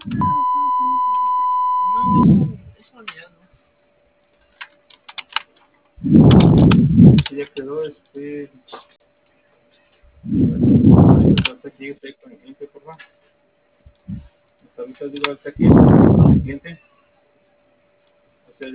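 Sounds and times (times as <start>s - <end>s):
voicemail beep tone: 0.0s - 2.4s
louder bursts of noise: 0.0s - 3.0s, 6.0s - 7.6s, 10.1s - 12.0s, 13.9s - 14.4s, 15.2s - 16.8s.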